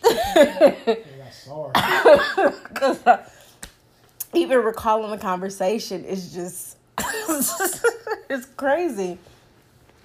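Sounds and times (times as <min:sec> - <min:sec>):
speech: 0:00.4 - 0:03.3, 0:04.4 - 0:09.3
small short cough: 0:01.7 - 0:03.0, 0:07.0 - 0:07.9.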